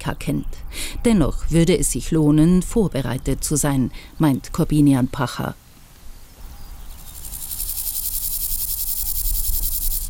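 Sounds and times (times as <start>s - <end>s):
speech: 0.1s - 5.6s
chorus of grasshoppers chirping on a former taxiway: 6.3s - 10.0s.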